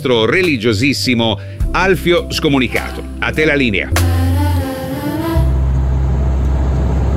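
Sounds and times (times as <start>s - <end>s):
speech: 0.0s - 4.2s
truck engine rumbling while driving along the road: 2.9s - 7.1s.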